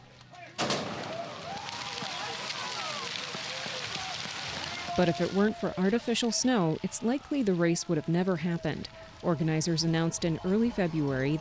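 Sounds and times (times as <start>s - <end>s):
crowd of skiers and spectators cheering: 0.0s - 11.3s
starting gun fired at a cross-country ski race: 0.6s - 5.0s
speech: 5.0s - 11.3s.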